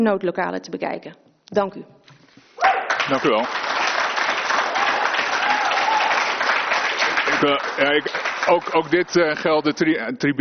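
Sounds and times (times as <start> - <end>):
speech: 0.0 - 2.0, 3.1 - 3.7, 7.4 - 10.3
applause from the public gallery at a committee meeting: 2.6 - 9.4.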